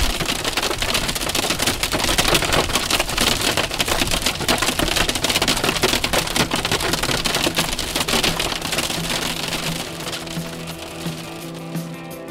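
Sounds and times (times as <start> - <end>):
hail pelting down in a storm in Tornado Alley: 0.0 - 12.2.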